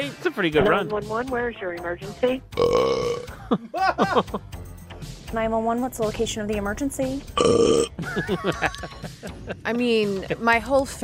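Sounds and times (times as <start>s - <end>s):
speech: 0.1s - 11.0s
person belching: 2.6s - 3.4s, 7.4s - 8.0s
laughter: 3.3s - 4.5s, 7.9s - 10.6s.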